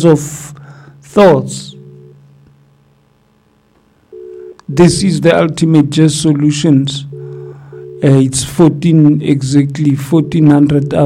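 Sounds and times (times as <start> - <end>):
speech: 0.0 - 0.5, 1.2 - 1.8, 4.7 - 7.1, 8.0 - 11.0
telephone ringback tone on an outgoing call: 4.1 - 4.6, 7.0 - 8.4.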